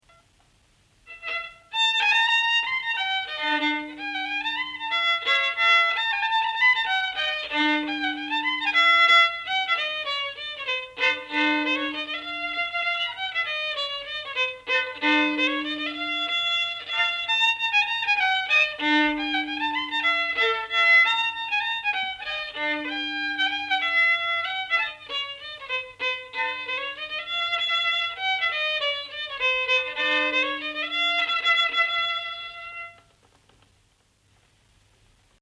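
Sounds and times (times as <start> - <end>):
folk violin tune from Ruhnu: 0.1 - 33.4.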